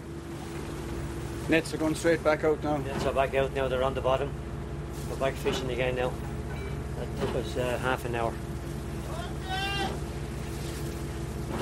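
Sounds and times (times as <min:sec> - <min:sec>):
steady drone of a running boat engine: 0:00.0 - 0:11.6
wind: 0:00.0 - 0:11.6
speech: 0:01.5 - 0:06.3, 0:07.2 - 0:08.5
shout on a boat: 0:09.0 - 0:10.1.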